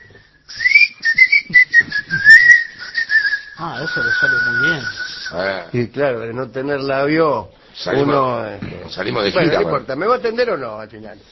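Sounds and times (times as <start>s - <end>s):
person whistling a wavering tune through their teeth: 0.0s - 5.4s
speech: 3.6s - 11.3s.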